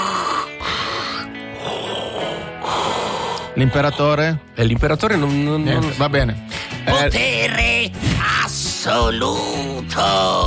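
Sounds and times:
voice imitating heavy mechanical respirator breathing: 0.0 - 4.2
speech: 3.6 - 10.4.

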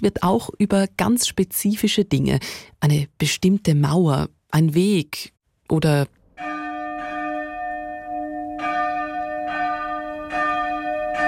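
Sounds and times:
speech: 0.0 - 6.2
several church bells ringing in a sustained peal: 6.4 - 11.2.

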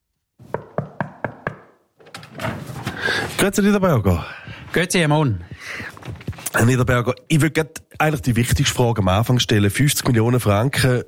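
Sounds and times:
knuckles knocking on an office door: 0.5 - 1.8
speech: 3.4 - 11.0.

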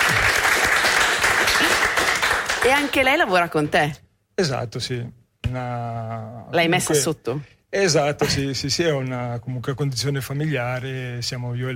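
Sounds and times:
crowd applauding: 0.0 - 3.1
speech: 2.6 - 11.7.

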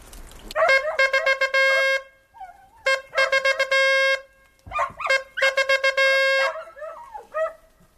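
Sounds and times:
hunting horn sounding the signal for a dead roebuck: 0.7 - 2.2, 2.8 - 4.4, 5.0 - 6.6.

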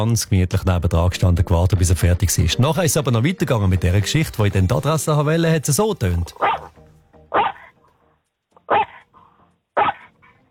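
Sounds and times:
speech: 0.0 - 6.7
dog barking: 6.4 - 6.7, 7.3 - 7.8, 8.6 - 10.4.

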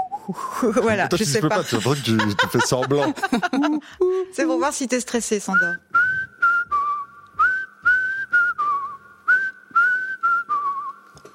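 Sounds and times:
person whistling a short tune with slight tremolo: 0.0 - 0.6, 5.8 - 11.1
speech: 0.3 - 5.9
laughter: 0.6 - 3.9.

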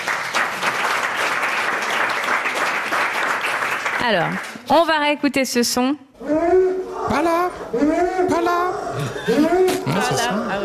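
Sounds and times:
audience applause: 0.0 - 4.6
speech: 4.0 - 6.5, 7.1 - 10.6.

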